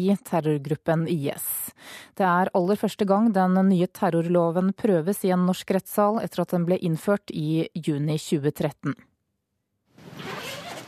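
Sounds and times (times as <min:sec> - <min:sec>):
speech: 0:00.0 - 0:09.1
zipper being pulled open on a large suitcase: 0:10.0 - 0:10.8.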